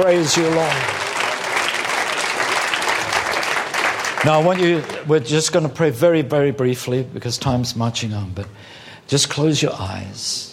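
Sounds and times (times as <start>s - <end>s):
speech: 0.0s - 1.0s, 4.2s - 10.5s
church congregation clapping during a worship service: 0.0s - 5.3s.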